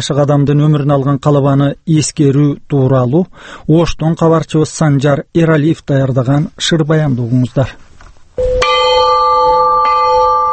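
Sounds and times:
speech: 0.0s - 8.6s
50 kg Russian-made peace bell struck at a memorial ceremony: 8.4s - 10.5s.

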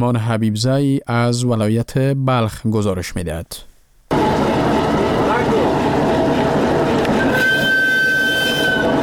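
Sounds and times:
speech: 0.0s - 4.4s
freight train in 68 wagons rumbling along the rails: 4.1s - 9.0s
thin high metallic squeal: 7.2s - 9.0s.

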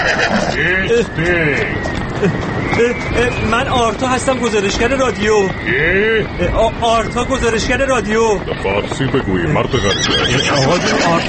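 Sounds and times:
horse neighing as a rider approaches: 0.0s - 0.9s, 9.5s - 11.2s
speech: 0.0s - 11.2s.

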